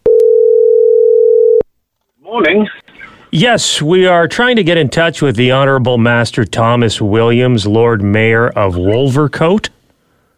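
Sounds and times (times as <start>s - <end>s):
telephone dial tone as a call is placed: 0.0s - 1.6s
speech: 2.4s - 9.8s.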